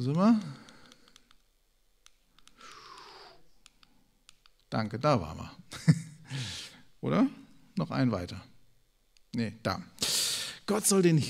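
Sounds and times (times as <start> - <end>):
speech: 0.0 - 0.6, 4.7 - 8.5, 9.3 - 9.9, 10.7 - 11.2
mouse or keyboard clicks while clicking through presentation slides: 0.0 - 4.7.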